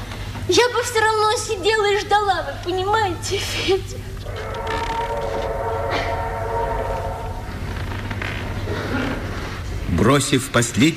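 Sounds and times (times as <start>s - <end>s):
speech: 0.5s - 5.4s, 10.0s - 10.9s
departing train rumbling: 4.2s - 9.9s
train horn long loud blast: 4.3s - 7.6s.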